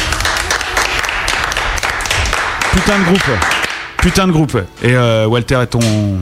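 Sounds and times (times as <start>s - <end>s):
crowd applauding: 0.0s - 4.3s
speech: 2.8s - 6.1s.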